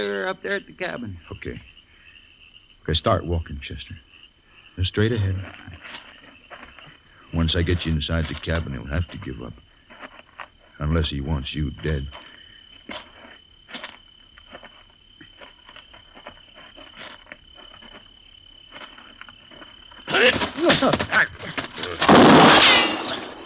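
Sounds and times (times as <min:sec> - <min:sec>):
insects chirping: 0:00.0 - 0:23.4
speech: 0:00.1 - 0:01.7, 0:02.8 - 0:04.1, 0:04.8 - 0:06.1, 0:07.3 - 0:09.6, 0:10.8 - 0:12.3, 0:20.8 - 0:21.3
scuffling during a struggle: 0:05.0 - 0:23.4
gunshot during a struggle: 0:22.0 - 0:23.4.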